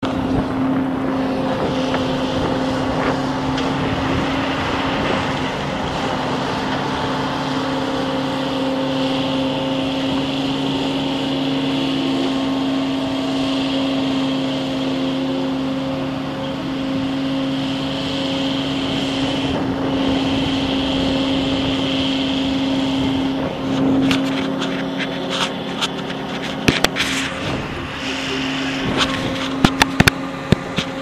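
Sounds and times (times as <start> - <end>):
street cleaner machine: 0.0 - 31.0.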